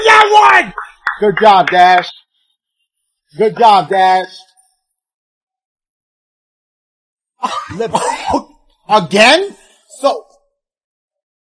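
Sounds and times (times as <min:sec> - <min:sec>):
speech: 0:00.6 - 0:02.2, 0:03.3 - 0:04.5, 0:07.4 - 0:10.3
person coughing roughly: 0:07.4 - 0:08.6.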